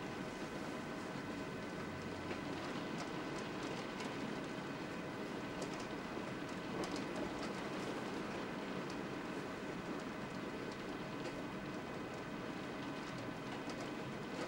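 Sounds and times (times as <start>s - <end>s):
steady rain falling: 0.3s - 14.4s.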